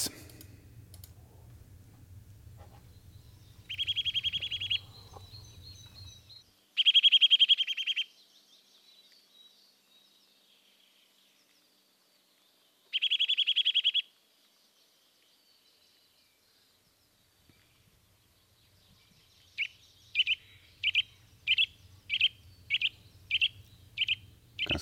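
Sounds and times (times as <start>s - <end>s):
low rumble: 0.0s - 6.4s, 17.8s - 24.7s
Eurasian nuthatch calls: 2.6s - 8.0s, 12.9s - 14.0s, 19.4s - 24.7s.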